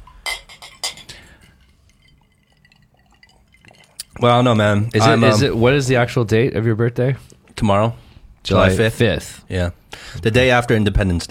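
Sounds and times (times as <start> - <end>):
glasses clinking in a birthday toast: 0.0 - 4.2
speech: 4.2 - 11.2.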